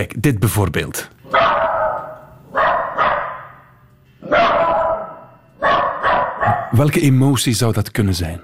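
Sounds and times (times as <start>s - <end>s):
speech: 0.0s - 1.2s, 6.8s - 8.4s
distressed frightened dog giving alarm barks: 1.3s - 6.8s.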